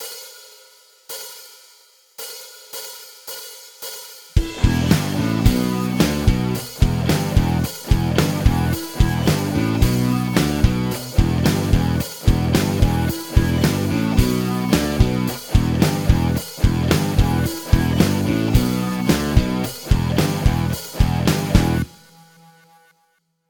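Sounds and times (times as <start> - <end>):
band guitar riff: 4.4 - 22.0.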